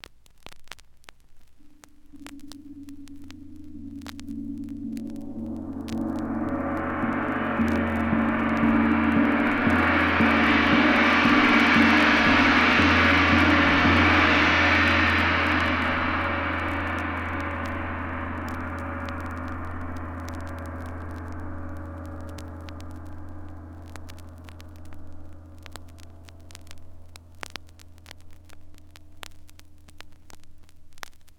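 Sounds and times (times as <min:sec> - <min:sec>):
gong struck: 0:02.2 - 0:27.3.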